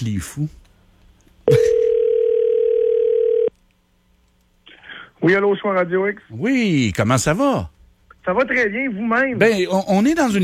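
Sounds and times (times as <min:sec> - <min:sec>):
speech: 0:00.0 - 0:00.7, 0:05.2 - 0:10.4
telephone dial tone while placing a call: 0:01.8 - 0:03.5.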